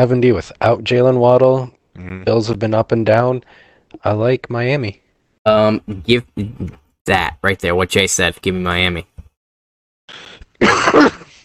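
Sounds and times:
speech: 0:00.0 - 0:09.2, 0:10.1 - 0:11.2
raspy breath: 0:10.1 - 0:10.5
person coughing: 0:10.6 - 0:11.4.

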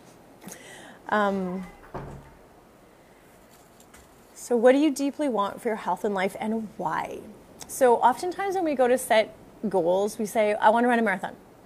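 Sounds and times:
speech: 0:01.1 - 0:01.8, 0:04.5 - 0:11.5
door creaking with a drawn-out squeal: 0:01.5 - 0:02.7
door shutting with a soft thud: 0:01.6 - 0:02.6.

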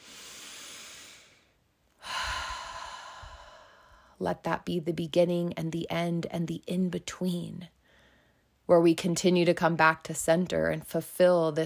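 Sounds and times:
deep breath: 0:00.0 - 0:04.2, 0:07.8 - 0:08.5
speech: 0:04.2 - 0:07.8, 0:08.7 - 0:11.6.

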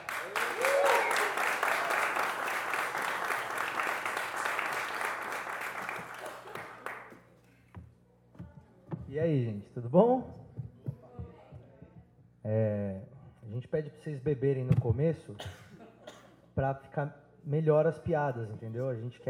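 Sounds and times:
comedy show audience applauding: 0:00.0 - 0:07.2
comedy show crowd cheering: 0:00.0 - 0:07.2
speech: 0:09.2 - 0:10.4, 0:13.8 - 0:15.6, 0:16.6 - 0:19.2.

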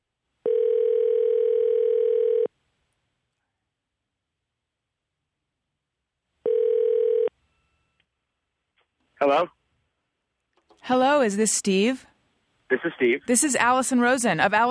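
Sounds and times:
telephone line tone while placing a call: 0:00.4 - 0:02.5, 0:06.4 - 0:07.9
speech: 0:09.2 - 0:09.6, 0:10.8 - 0:12.1, 0:12.7 - 0:14.7.

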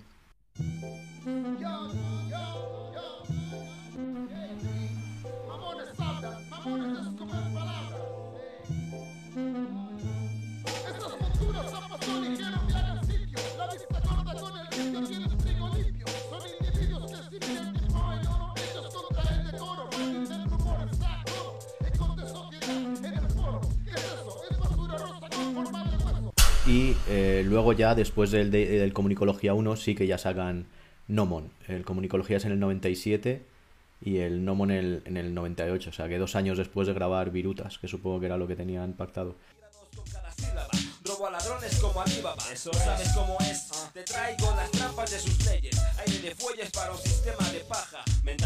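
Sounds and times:
song from an album played in mono: 0:00.6 - 0:29.0, 0:39.7 - 0:48.4
speech: 0:01.2 - 0:02.7, 0:27.6 - 0:40.2, 0:41.7 - 0:48.4
repeating bass pattern: 0:10.7 - 0:14.6, 0:15.3 - 0:19.6, 0:20.5 - 0:22.5, 0:25.9 - 0:28.9, 0:42.8 - 0:46.0.

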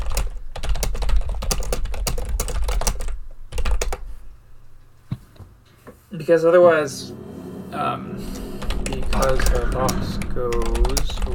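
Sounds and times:
rapid typing on a computer keyboard: 0:00.0 - 0:04.0
speech: 0:06.2 - 0:07.2, 0:09.2 - 0:11.3.

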